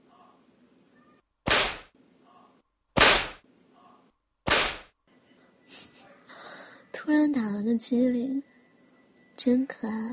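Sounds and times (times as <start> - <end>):
loud sharp whip cracks: 1.5 - 1.9, 3.0 - 3.4, 4.5 - 4.9
speech: 7.1 - 8.5, 9.4 - 10.1.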